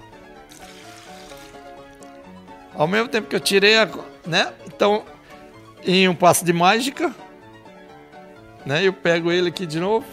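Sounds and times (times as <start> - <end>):
water pouring out of a small bowl: 0.5 - 2.2
speech: 2.8 - 5.1, 5.8 - 7.2, 8.6 - 10.1.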